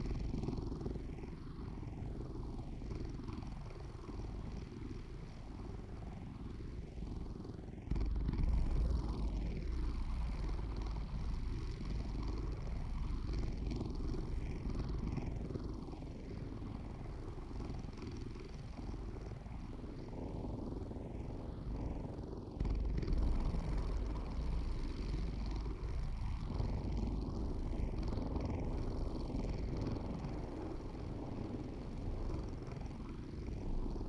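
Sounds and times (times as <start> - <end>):
cat purring: 0.0 - 34.0
dense steady low rumble with sweeping whooshing tones: 7.8 - 34.0.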